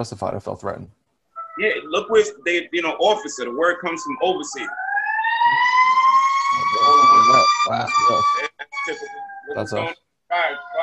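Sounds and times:
speech: 0.0s - 1.0s, 1.6s - 4.8s, 7.3s - 10.8s
fire truck siren wailing: 1.4s - 10.8s.

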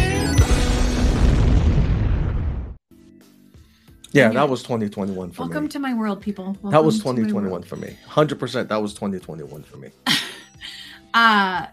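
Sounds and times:
loud explosion in played video footage: 0.8s - 2.8s
speech: 4.2s - 11.7s.

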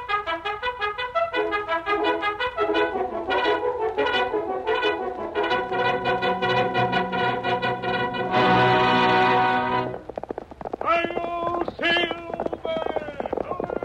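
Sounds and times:
bold fanfare music opening an old-time radio program: 0.0s - 10.0s
continuing rhythmic clatter: 0.0s - 13.8s
galloping horse hoofbeats from an old-time radio program opening: 0.0s - 13.8s.

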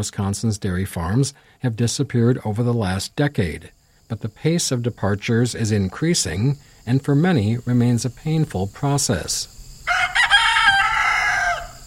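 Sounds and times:
speech: 0.0s - 10.0s
rooster crowing on a dairy farm outside Monroe, Wisconsin: 9.8s - 11.8s.

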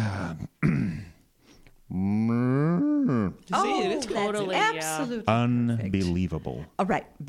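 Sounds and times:
person imitating cow mooing: 1.9s - 3.4s
speech: 3.5s - 7.2s.

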